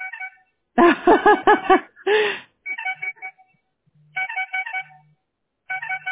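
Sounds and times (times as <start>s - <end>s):
phone ringtone for an incoming call playing a bright melodic electronic tune: 0.0s - 1.8s, 2.7s - 3.5s, 4.1s - 5.1s, 5.7s - 6.1s
laughter: 0.8s - 2.4s.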